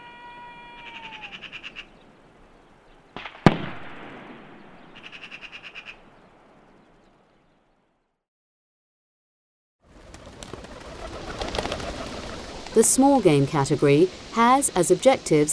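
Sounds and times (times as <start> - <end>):
common wood pigeons' wings clattering in flight over a forest: 9.9 - 12.8
speech: 12.8 - 15.5.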